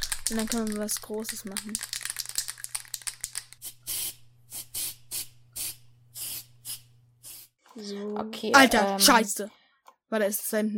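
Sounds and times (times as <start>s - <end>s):
spray paint can clicking rattles: 0.0s - 7.5s
speech: 0.3s - 1.9s, 7.8s - 10.7s
spray paint can hissing while spraying a tag: 1.6s - 7.6s.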